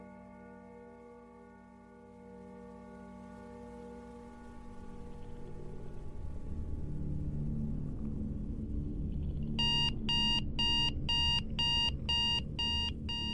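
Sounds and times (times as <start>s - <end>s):
low ambient rumble: 5.6s - 13.3s
mobile phone alarm ringing in bright electronic beeps: 9.6s - 13.3s.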